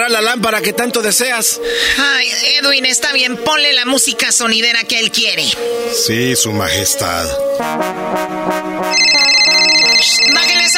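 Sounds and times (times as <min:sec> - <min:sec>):
speech: 0:00.0 - 0:09.3
melodic electronic phone ringtone with synth notes: 0:08.9 - 0:10.7.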